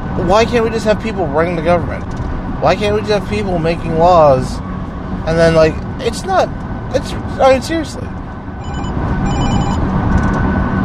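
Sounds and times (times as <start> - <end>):
low rumble inside a car being driven: 0.0 - 10.8
speech: 0.2 - 8.1
phone ringing with incoming call in a car: 8.6 - 9.8.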